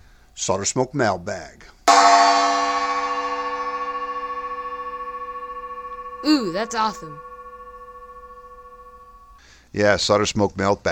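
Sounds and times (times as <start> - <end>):
speech: 0.4 - 1.8, 6.2 - 7.3, 9.7 - 10.9
gong strike ringing: 1.9 - 9.4.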